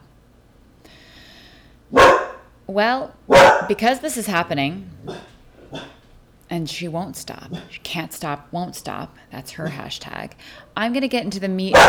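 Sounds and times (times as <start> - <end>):
dog barking: 1.9 - 2.5, 3.3 - 3.8, 5.0 - 6.0
speech: 2.7 - 5.9, 6.5 - 11.8.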